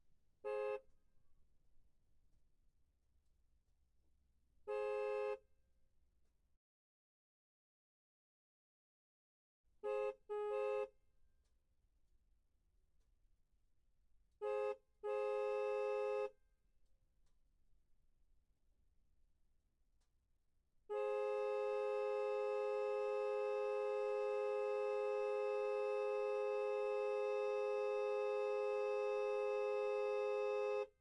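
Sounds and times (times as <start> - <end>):
Mercedes C63 car horn: 0.4 - 0.9, 4.7 - 5.4, 9.8 - 10.9, 14.4 - 16.4, 20.9 - 30.9.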